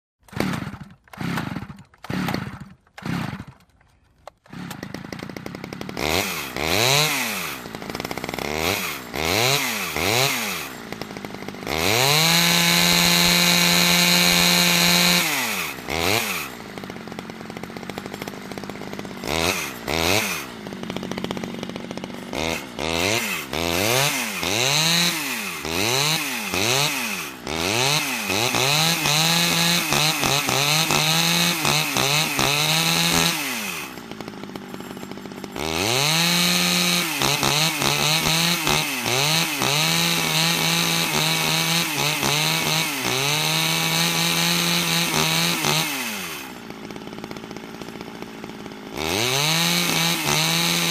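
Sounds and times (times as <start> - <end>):
chainsaw starting with short revs and running, close perspective: 0.2 - 50.9.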